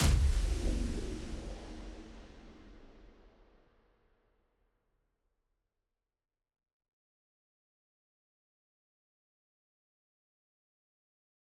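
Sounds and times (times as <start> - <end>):
high impact: 0.0 - 3.2.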